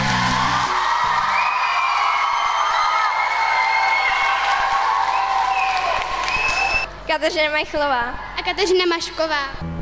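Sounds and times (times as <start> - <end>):
audience whoops and cheers: 0.0 - 6.9
live audience sustained applause: 0.0 - 6.9
speech: 7.2 - 9.7.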